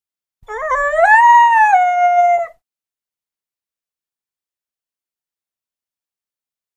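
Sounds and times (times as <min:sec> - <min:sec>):
coyote giving a drawn-out howl: 0:00.5 - 0:02.6.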